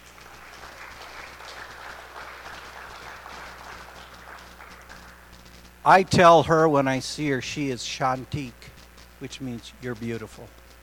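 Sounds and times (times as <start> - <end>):
audience applause: 0.0 - 5.3
speech: 5.8 - 10.6.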